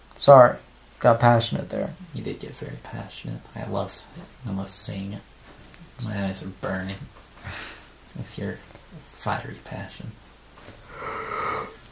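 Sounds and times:
speech: 0:00.2 - 0:05.3, 0:06.0 - 0:10.2
person yawning: 0:10.9 - 0:11.9.

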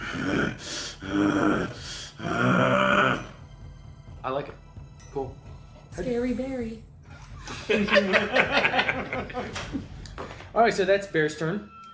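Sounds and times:
person imitating heavy breathing as a growl: 0:00.0 - 0:03.4
speech: 0:05.2 - 0:06.9, 0:07.7 - 0:09.9, 0:10.6 - 0:11.8
laughter: 0:07.2 - 0:09.9.

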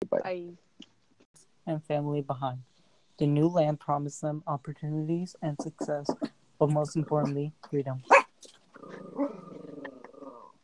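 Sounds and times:
speech: 0:00.3 - 0:00.7, 0:01.7 - 0:08.2
dog growling and barking: 0:08.1 - 0:10.5.

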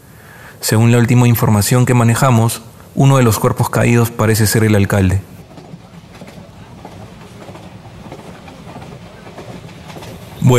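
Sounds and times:
speech: 0:00.6 - 0:05.4
midnight train rumbling past: 0:01.9 - 0:10.5
clickety-clack of train wheels on the rails: 0:05.2 - 0:10.5.

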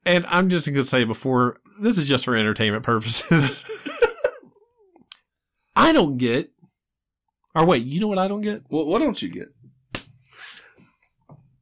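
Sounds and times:
speech: 0:00.1 - 0:04.0, 0:05.8 - 0:06.5, 0:07.6 - 0:09.6
laughter: 0:03.1 - 0:04.6
hand slapping a knee with a fabric-damped pat: 0:09.9 - 0:10.2.

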